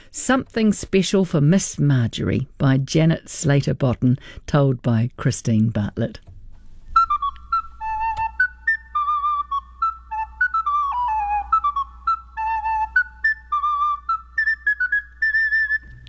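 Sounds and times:
faint low hum: 0:00.0 - 0:16.0
speech: 0:00.1 - 0:06.3
canary singing whistled notes and chirps: 0:06.7 - 0:16.0.

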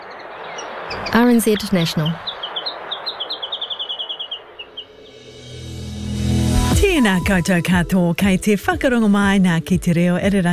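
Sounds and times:
Chatham Island warbler singing high thin chirps: 0:00.0 - 0:05.2
speech: 0:00.9 - 0:02.3, 0:07.0 - 0:10.5.

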